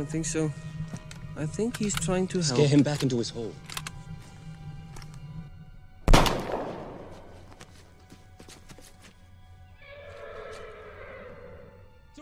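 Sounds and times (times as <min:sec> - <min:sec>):
speech: 0:00.0 - 0:00.8, 0:01.4 - 0:03.7
horse whinnying: 0:09.8 - 0:11.9.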